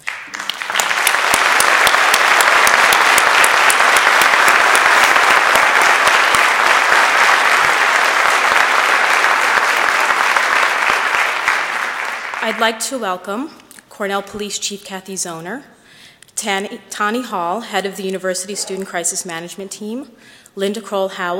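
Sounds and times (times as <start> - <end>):
sizable audience applauding: 0.0 - 12.6
speech: 12.5 - 15.8, 16.4 - 21.3.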